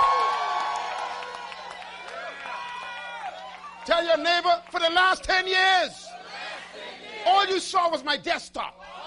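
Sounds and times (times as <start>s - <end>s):
audience screaming and cheering: 0.0s - 4.1s
speech: 3.9s - 6.1s, 7.2s - 8.8s.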